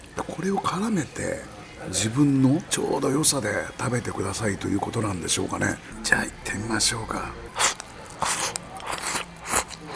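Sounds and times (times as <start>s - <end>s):
speech: 0.2s - 7.6s
crunching bites into cabbage with miso: 7.5s - 9.9s.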